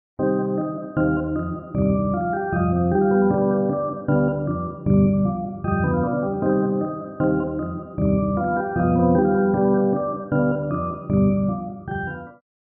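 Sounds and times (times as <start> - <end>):
wet distant-miked organ through rotary speaker: 0.2 - 12.4.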